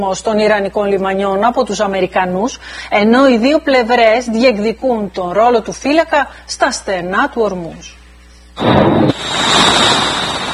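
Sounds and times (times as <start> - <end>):
speech: 0.0 - 8.0, 8.6 - 10.2
powerful explosion from US bombardment in Iran: 8.6 - 10.5.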